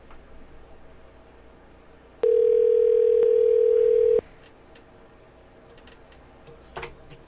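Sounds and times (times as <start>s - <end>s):
telephone dial tone while placing a call: 2.2s - 4.2s.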